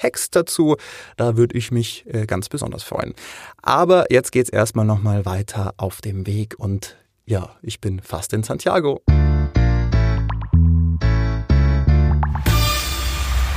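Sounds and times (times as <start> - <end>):
speech: 0.0 - 9.6
plucked musical notes: 9.1 - 13.4.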